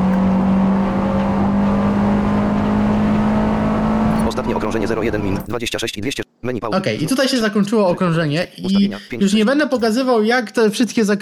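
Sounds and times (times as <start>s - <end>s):
car engine droning in a racing video game: 0.0s - 5.5s
speech: 4.7s - 11.2s.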